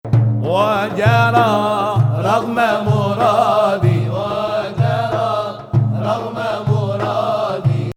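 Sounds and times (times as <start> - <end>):
Ajam Nahawand maqam melody: 0.1 - 7.9.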